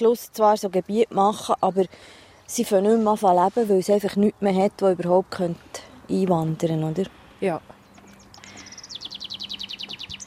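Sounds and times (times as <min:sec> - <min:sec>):
speech: 0:00.0 - 0:07.7
northern lapwing calling in flight: 0:07.8 - 0:10.2.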